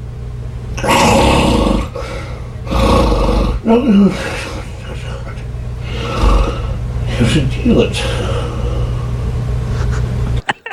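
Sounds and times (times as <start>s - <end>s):
constant low drone: 0.0s - 9.9s
person mumbling: 0.8s - 8.6s
loud rumbling snoring: 0.8s - 9.3s
speech: 3.7s - 4.5s, 7.2s - 8.3s.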